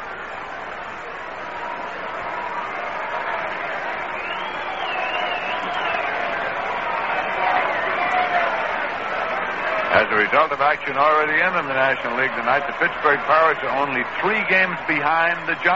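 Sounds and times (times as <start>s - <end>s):
large stadium crowd roaring in a rhythmic chant: 0.0s - 15.7s
whistle: 4.1s - 6.2s
speech: 10.0s - 15.7s.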